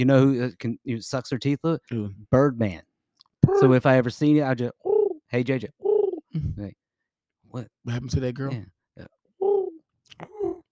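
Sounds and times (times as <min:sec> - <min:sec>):
speech: 0:00.0 - 0:02.9, 0:03.5 - 0:06.8, 0:07.5 - 0:09.2
person imitating pigeon cooing: 0:03.4 - 0:03.8, 0:04.8 - 0:05.2, 0:05.8 - 0:06.6, 0:09.4 - 0:10.7.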